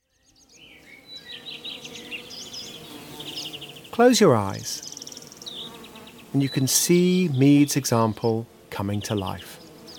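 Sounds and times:
bees buzzing outdoors: 0:00.1 - 0:09.9
speech: 0:04.0 - 0:04.9, 0:06.3 - 0:09.5.

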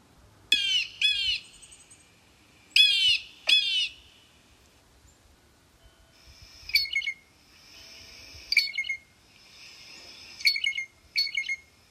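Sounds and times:
blue jay ringing whistled calls: 0:00.5 - 0:04.4, 0:06.2 - 0:11.8.

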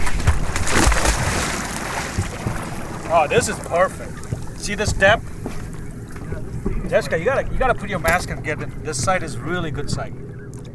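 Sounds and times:
heavy splash of someone dropping into the water: 0:00.0 - 0:04.3
water sloshing around a boat in the open air: 0:00.0 - 0:10.7
speech: 0:03.1 - 0:05.3, 0:06.9 - 0:10.2.

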